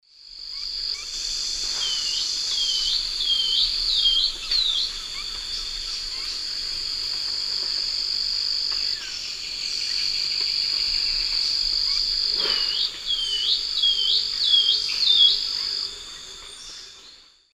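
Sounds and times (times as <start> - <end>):
Myrmotherula longipennis zimmeri song in eastern lowlands of South America: 1.7 - 6.6, 8.7 - 17.5.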